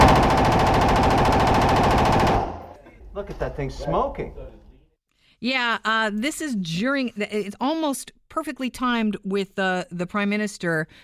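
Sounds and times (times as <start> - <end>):
rapid gunfire at a gun range: 0.0 - 2.7
speech: 3.4 - 4.6, 5.4 - 11.0.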